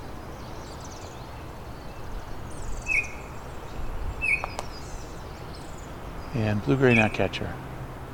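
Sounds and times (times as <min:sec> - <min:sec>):
Blackburnian warbler singing far off: 0:00.0 - 0:08.1
steady outdoor hiss: 0:00.0 - 0:08.1
short brighter chirps from another bird: 0:00.4 - 0:07.3
speech: 0:06.3 - 0:07.7.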